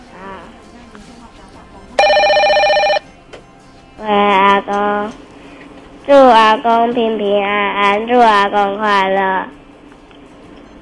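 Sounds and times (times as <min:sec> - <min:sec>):
faint chatter: 0:00.0 - 0:07.4
electronic phone ring: 0:02.0 - 0:03.2
speech: 0:06.3 - 0:09.6.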